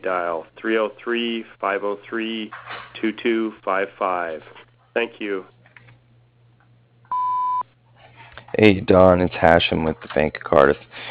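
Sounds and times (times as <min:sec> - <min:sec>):
speech: 0:00.0 - 0:05.6, 0:08.6 - 0:11.0
voicemail answering machine beep tone: 0:07.1 - 0:07.6.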